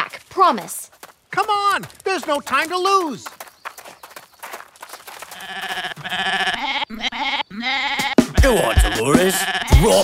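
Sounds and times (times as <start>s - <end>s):
speech: 0.4s - 3.3s, 8.4s - 10.0s
goat bleating: 5.4s - 10.0s.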